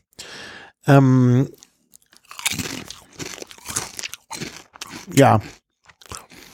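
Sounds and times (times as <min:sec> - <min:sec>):
speech: 0:00.9 - 0:01.6, 0:05.1 - 0:05.6
chewing dill-flavoured crisps: 0:01.5 - 0:06.5
dill-flavoured crisps crunching: 0:01.5 - 0:06.5.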